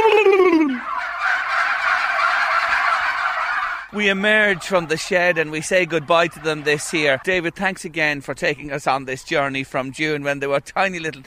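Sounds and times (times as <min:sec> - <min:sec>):
man giving a descending call to turkeys: 0:00.0 - 0:01.5, 0:02.2 - 0:11.2
turkeys gobbling in chorus: 0:00.0 - 0:11.2
speech: 0:03.9 - 0:11.2.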